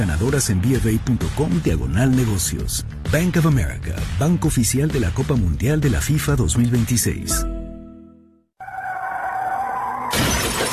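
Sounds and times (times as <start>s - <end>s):
speech: 0.0s - 7.6s
car tires screeching in a long skid: 8.6s - 10.7s
loud car crash: 9.7s - 10.7s
glass shattering and debris spraying: 10.0s - 10.7s.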